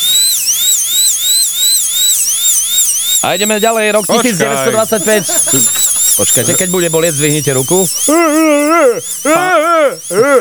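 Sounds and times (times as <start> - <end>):
electric dental drill whining: 0.0 - 10.3
speech: 3.2 - 10.3
laughter: 4.0 - 10.3.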